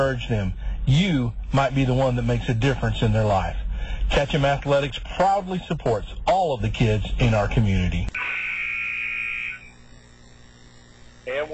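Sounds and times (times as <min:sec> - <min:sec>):
speech: 0:00.1 - 0:08.4, 0:11.3 - 0:11.5
basketball game buzzer blast: 0:08.2 - 0:09.8.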